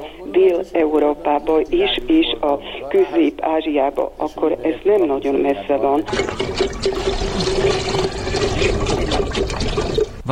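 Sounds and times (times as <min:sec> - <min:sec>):
speech: 0:00.2 - 0:06.9
water pouring from a can: 0:06.0 - 0:10.2.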